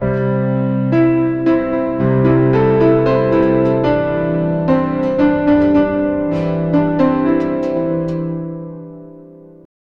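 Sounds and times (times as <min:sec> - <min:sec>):
soft gentle instrumental piano: 0:00.0 - 0:09.7.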